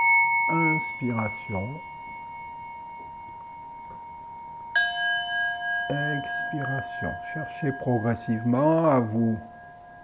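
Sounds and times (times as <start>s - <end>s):
gong struck during a breathing meditation: 0.0s - 10.0s
speech: 0.5s - 2.0s, 5.9s - 9.5s.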